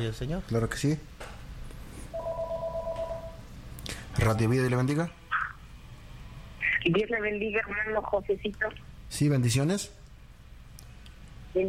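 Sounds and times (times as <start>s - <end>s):
speech: 0.0s - 1.3s, 4.2s - 5.2s, 6.8s - 10.0s
low hum: 0.0s - 11.6s
telephone ringing with an incoming call to a call-in line: 2.2s - 3.4s.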